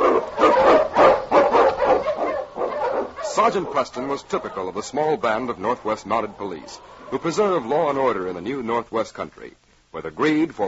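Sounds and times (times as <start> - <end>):
pack of husky sled dogs in the Yukon barking and yelping: 0.0 - 8.1
speech: 3.4 - 10.6.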